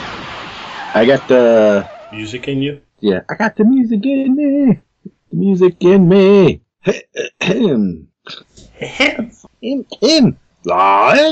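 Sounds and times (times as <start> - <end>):
speech: 0.9 - 11.2
person making gravelly throat-clearing noises: 6.8 - 9.0.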